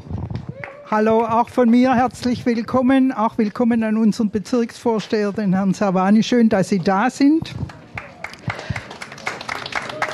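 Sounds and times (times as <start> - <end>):
audience applauding with scattered irregular clapping: 0.5 - 0.9, 7.7 - 10.1
speech: 0.9 - 7.8.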